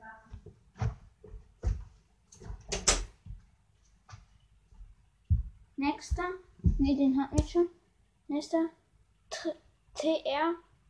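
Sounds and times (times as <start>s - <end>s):
door being closed: 2.4s - 3.2s
speech: 6.0s - 8.8s, 9.4s - 10.7s.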